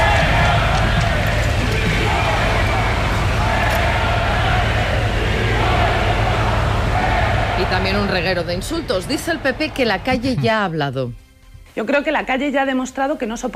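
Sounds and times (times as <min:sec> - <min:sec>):
large outdoor crowd booing at a military parade: 0:00.0 - 0:10.4
speech: 0:07.9 - 0:11.2, 0:11.8 - 0:13.5.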